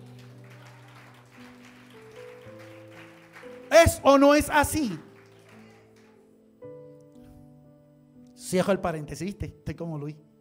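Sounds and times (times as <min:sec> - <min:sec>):
audience clapping: 0:00.0 - 0:06.3
speech: 0:03.7 - 0:05.1, 0:08.5 - 0:10.3.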